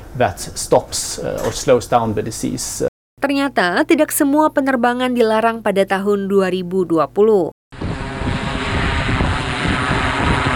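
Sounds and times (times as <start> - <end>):
speech: 0.2 - 7.5
drones flying in the sky with whirring rotors: 7.8 - 10.5.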